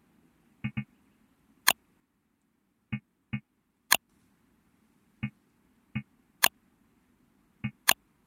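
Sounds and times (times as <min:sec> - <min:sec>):
button sounds: 0:00.6 - 0:00.8, 0:07.6 - 0:08.0.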